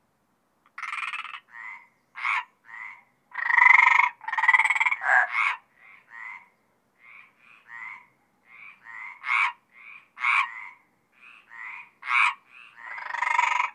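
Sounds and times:
Mediterranean tree frogs croaking at Apt, Vaucluse: 0:00.7 - 0:13.7.

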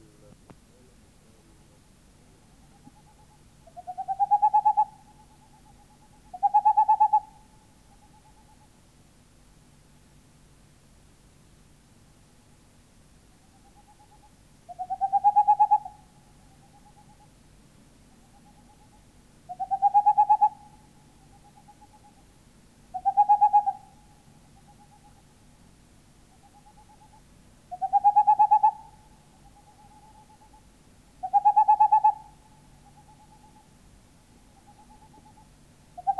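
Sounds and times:
faint steady hiss: 0:00.0 - 0:36.1
boreal owl hooting: 0:02.4 - 0:08.6, 0:13.6 - 0:17.3, 0:18.4 - 0:22.3, 0:22.9 - 0:25.2, 0:26.3 - 0:30.6, 0:31.2 - 0:33.7, 0:34.4 - 0:36.1.

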